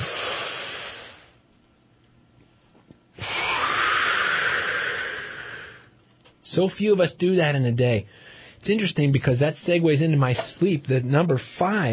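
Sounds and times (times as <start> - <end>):
deep breath in and out: 0.0 - 1.4, 3.2 - 5.9, 8.1 - 8.6
speech: 6.6 - 11.9.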